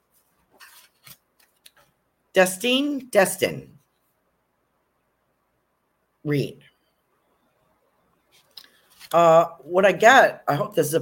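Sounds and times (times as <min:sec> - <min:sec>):
playing card pulled from a deck during a card reading: 0:00.1 - 0:01.8
speech: 0:02.4 - 0:03.8, 0:06.3 - 0:06.7, 0:09.1 - 0:11.0.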